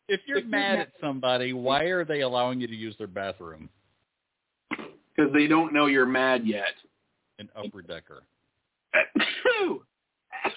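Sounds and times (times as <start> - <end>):
speech: 0.1 - 3.8, 4.8 - 8.3, 8.9 - 10.5
person sneezing: 9.0 - 9.8, 10.4 - 10.5.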